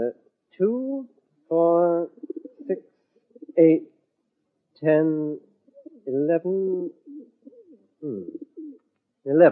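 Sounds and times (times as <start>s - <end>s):
speech: 0.0s - 1.7s, 3.6s - 3.9s, 4.8s - 5.4s, 6.3s - 7.0s
group of plump pigeons cooing: 1.8s - 2.8s, 3.4s - 3.8s, 5.8s - 6.1s, 6.7s - 8.8s.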